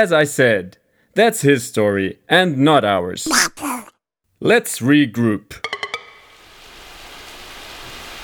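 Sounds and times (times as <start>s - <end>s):
speech: 0.0s - 3.7s, 4.4s - 5.7s
steady rain pouring down: 6.3s - 8.2s.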